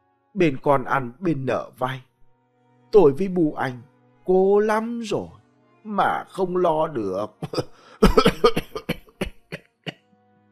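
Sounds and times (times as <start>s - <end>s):
speech: 0.4s - 2.1s, 2.9s - 8.3s
old man coughing a long bout: 7.4s - 10.0s.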